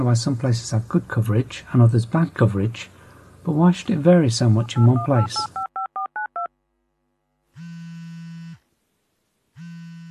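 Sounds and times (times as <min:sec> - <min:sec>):
speech: 0:00.0 - 0:05.6
mobile phone keypad dialing beeps: 0:04.7 - 0:06.5.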